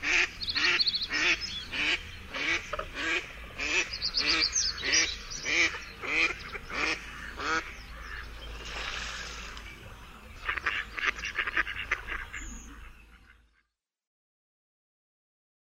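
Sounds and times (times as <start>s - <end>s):
mallard quacking: 0.0s - 8.3s, 10.4s - 13.7s.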